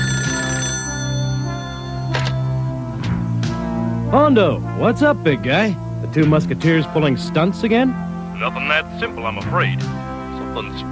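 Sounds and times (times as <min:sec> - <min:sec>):
telephone ringing in short bursts: 0:00.0 - 0:02.7
steady sustained musical tone: 0:00.0 - 0:10.9
speech: 0:04.1 - 0:10.0, 0:10.6 - 0:10.9.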